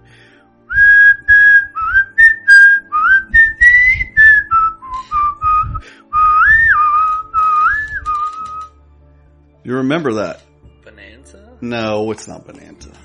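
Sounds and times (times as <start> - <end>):
person whistling a tune: 0.7 - 8.7
speech: 9.7 - 10.5, 11.6 - 12.6.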